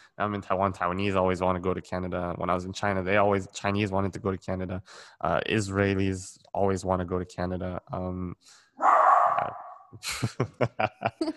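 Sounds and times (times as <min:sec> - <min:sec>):
speech: 0:00.2 - 0:11.3
small untrained poodle barking: 0:08.8 - 0:09.5
laughter: 0:10.0 - 0:11.3.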